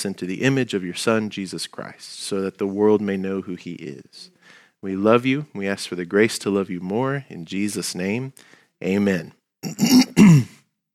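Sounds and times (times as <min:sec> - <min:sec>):
speech: 0:00.0 - 0:10.6
person clearing throat: 0:09.6 - 0:10.6.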